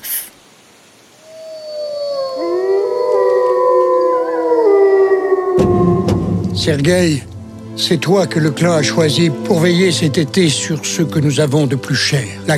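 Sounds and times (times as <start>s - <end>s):
chorus of wolves howling: 1.3s - 7.3s
speech: 6.6s - 12.5s.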